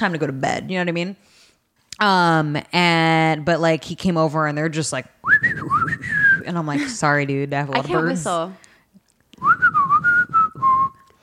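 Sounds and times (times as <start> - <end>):
speech: 0.0 - 1.3, 2.0 - 8.6
person whistling a melody: 5.2 - 6.5, 9.4 - 11.2.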